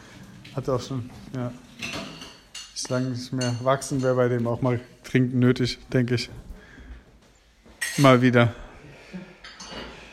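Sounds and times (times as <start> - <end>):
speech: 0.5 - 1.7, 2.9 - 6.5, 8.0 - 9.3
dishes clinking and clattering: 1.6 - 4.6, 7.7 - 8.4, 9.3 - 10.1.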